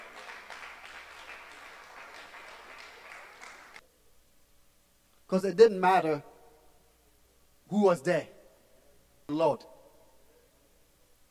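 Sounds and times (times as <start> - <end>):
audience clapping: 0.0 - 3.8
speech: 5.3 - 6.3, 7.7 - 8.3, 9.3 - 9.7.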